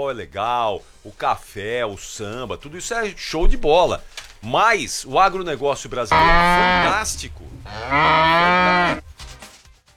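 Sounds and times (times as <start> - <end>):
speech: 0.0 - 9.0
ox mooing: 6.0 - 9.0.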